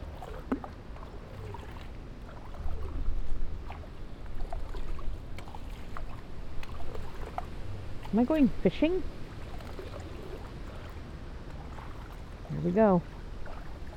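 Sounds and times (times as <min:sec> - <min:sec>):
footsteps splashing through shallow street water: 0:00.0 - 0:08.6, 0:09.3 - 0:13.9
low outdoor rumble: 0:00.0 - 0:13.9
speech: 0:08.1 - 0:09.2, 0:12.6 - 0:13.2.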